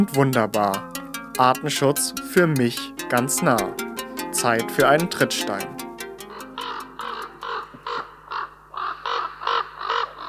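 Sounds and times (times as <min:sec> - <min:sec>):
speech: 0:00.0 - 0:03.8, 0:04.4 - 0:05.8
common raven croaking: 0:06.2 - 0:10.2.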